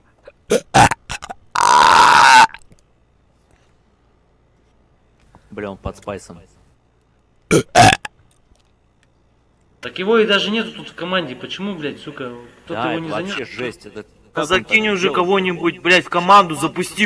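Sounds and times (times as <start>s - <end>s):
loud burping: 0.2s - 2.7s, 7.5s - 8.2s
speech: 5.6s - 6.6s, 9.8s - 17.0s.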